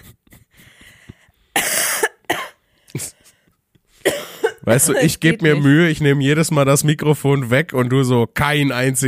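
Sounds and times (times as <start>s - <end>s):
person coughing harshly and raspily: 1.6s - 3.3s, 4.0s - 4.8s
speech: 4.7s - 9.0s.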